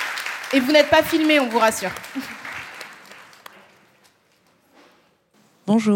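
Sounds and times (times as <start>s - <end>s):
audience clapping: 0.0s - 4.6s
speech: 0.5s - 2.4s, 5.7s - 5.9s.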